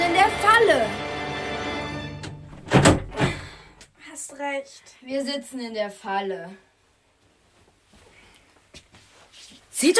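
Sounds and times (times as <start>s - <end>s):
stuck door jostled and rattled against its frame: 2.2s - 3.4s
heavy thunks of a stuck door: 2.2s - 3.7s
speech: 4.4s - 6.7s, 9.8s - 9.9s.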